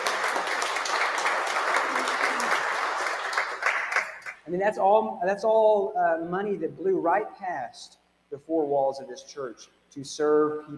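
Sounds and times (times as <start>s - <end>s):
large group applauding in a church: 0.0s - 4.4s
speech: 4.5s - 10.7s.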